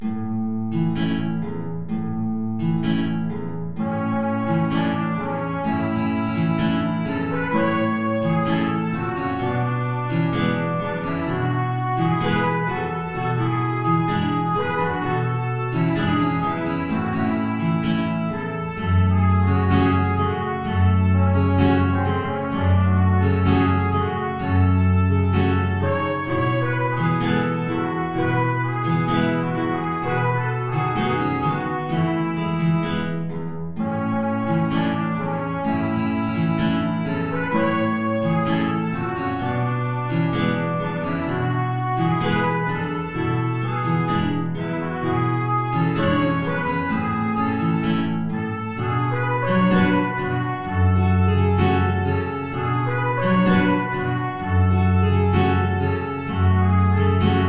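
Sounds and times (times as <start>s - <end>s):
two low guitars: 0.0s - 57.4s
tango trumpet in B flat: 2.8s - 57.4s.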